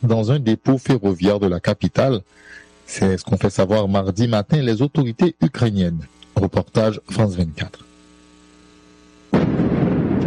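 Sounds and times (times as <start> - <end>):
speech: 0.0 - 7.9
explosions in the night sky over a city during air attacks: 9.3 - 10.2.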